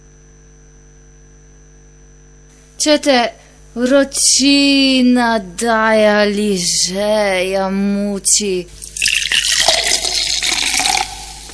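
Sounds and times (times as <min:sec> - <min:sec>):
speech: 0:02.8 - 0:09.2
cold fizzy drink being poured: 0:08.7 - 0:11.5.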